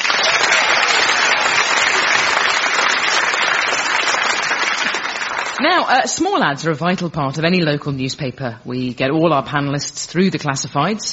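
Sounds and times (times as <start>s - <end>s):
audience applause: 0.0s - 5.8s
speech: 5.6s - 11.1s.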